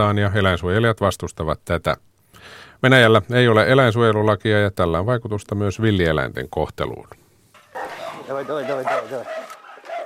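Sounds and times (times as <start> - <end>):
speech: 0.0 - 7.2, 8.3 - 9.5
hunting dog barking and yelping at a tethered boar: 7.6 - 10.0.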